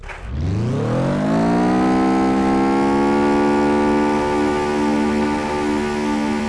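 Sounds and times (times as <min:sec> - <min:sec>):
vehicle reversing: 0:00.0 - 0:06.4.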